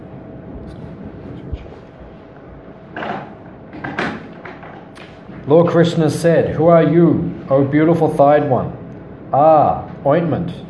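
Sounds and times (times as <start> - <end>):
low room hum: 0.0 - 10.6
door being pushed shut with a dull thud: 3.0 - 4.9
speech: 5.5 - 10.6.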